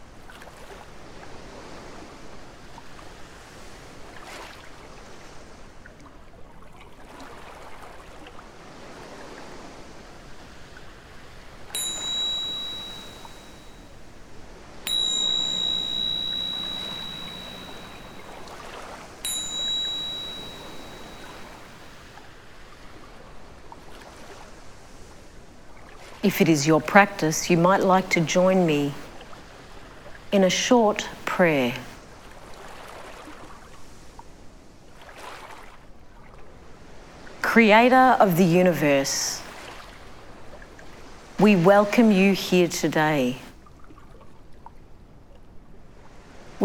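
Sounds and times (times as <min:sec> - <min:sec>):
ocean surf washing in at the beach: 0:11.8 - 0:13.5, 0:14.9 - 0:18.2, 0:19.2 - 0:21.6
bright meditation chime strikes: 0:11.8 - 0:13.8, 0:14.9 - 0:18.4, 0:19.2 - 0:22.0
speech: 0:26.2 - 0:29.0, 0:30.3 - 0:31.9, 0:37.6 - 0:39.4, 0:41.4 - 0:43.4.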